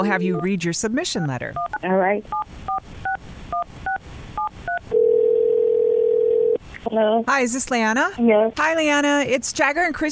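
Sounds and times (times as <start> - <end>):
touch-tone telephone beeps dialing a number: 0.0 - 0.5, 1.6 - 6.5
speech: 0.0 - 2.7, 6.9 - 10.0
telephone ringing tone on the line: 4.7 - 6.6.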